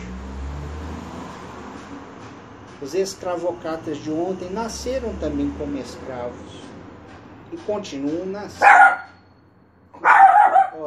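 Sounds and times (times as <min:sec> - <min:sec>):
speech: 0:02.8 - 0:06.7, 0:07.5 - 0:08.9
small dogs barking and yapping at home: 0:08.6 - 0:09.2, 0:10.0 - 0:10.8.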